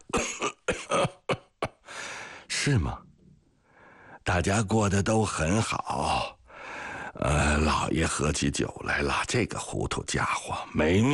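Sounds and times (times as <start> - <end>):
person with a persistent cough coughing: 0.0 - 1.9
speech: 2.7 - 3.0, 4.3 - 6.3, 7.6 - 11.1.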